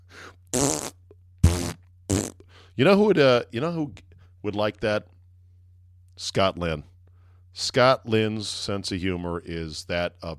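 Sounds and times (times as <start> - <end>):
faint low hum: 0.0 - 10.3
loud buzzy fart sounds: 0.5 - 2.5
speech: 2.8 - 5.1, 6.2 - 6.9, 7.6 - 10.3.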